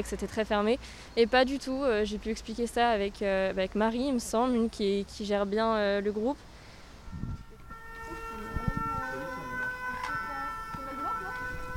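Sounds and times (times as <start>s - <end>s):
speech: 0.0s - 6.5s
ambulance siren wailing: 7.2s - 11.7s.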